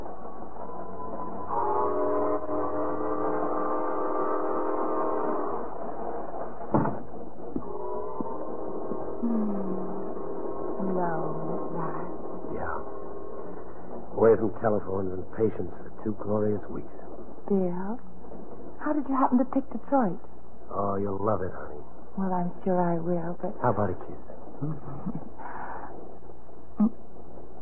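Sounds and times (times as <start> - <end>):
mechanical rumble of a train pulling away from a depot: 0.0 - 27.6
departing train horn blasts: 1.0 - 5.7, 7.6 - 9.2
speech: 14.5 - 18.1, 18.8 - 25.3.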